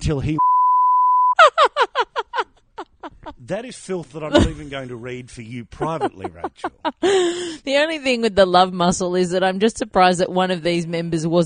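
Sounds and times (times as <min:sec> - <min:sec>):
speech: 0:00.0 - 0:00.5, 0:03.5 - 0:11.4
censor bleep tone: 0:00.4 - 0:01.4
laughter: 0:01.4 - 0:07.6.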